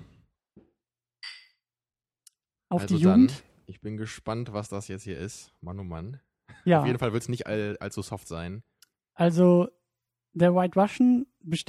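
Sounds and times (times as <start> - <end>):
drinking glasses clinking in a toast: 1.2 - 1.6
speech: 2.7 - 11.6.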